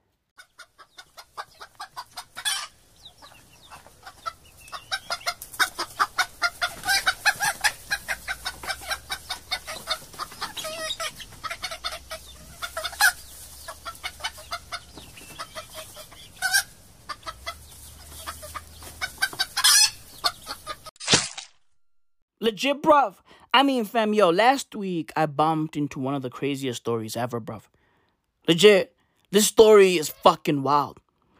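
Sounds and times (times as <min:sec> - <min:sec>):
flock of chickens clucking and squawking: 0:00.4 - 0:20.9
speech: 0:22.5 - 0:27.7, 0:28.5 - 0:31.0.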